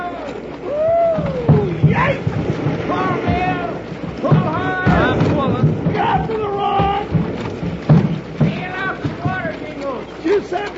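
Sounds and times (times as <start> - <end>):
voices shouting and whooping excitedly: 0.0 - 7.1
water rushing around a small boat through rough rapids: 0.0 - 10.7.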